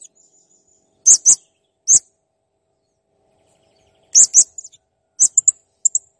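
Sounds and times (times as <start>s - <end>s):
blue-crowned hanging parrot song of shrill, high chirps: 1.1s - 2.0s, 4.2s - 5.5s.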